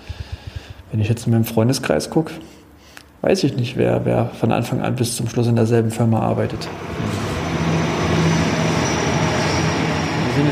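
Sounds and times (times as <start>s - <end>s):
speech: 0.9s - 2.6s, 3.2s - 7.3s
low droning hum of a passing train: 6.3s - 10.5s
train rumbling past: 6.3s - 10.5s
broad rushing noise of a passing train: 6.5s - 10.5s.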